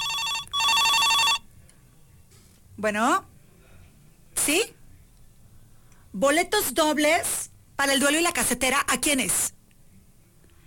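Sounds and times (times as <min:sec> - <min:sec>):
telephone ringing with an incoming call: 0:00.0 - 0:01.4
speech: 0:02.8 - 0:03.3, 0:04.5 - 0:04.8, 0:06.1 - 0:09.6.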